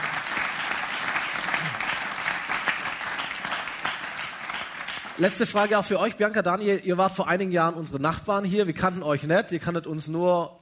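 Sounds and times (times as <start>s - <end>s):
audience applause: 0.0s - 5.7s
speech: 5.2s - 10.6s.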